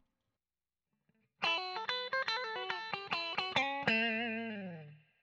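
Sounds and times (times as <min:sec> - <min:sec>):
hot clean electric guitar with neck and bridge pickups: 0:01.4 - 0:05.2.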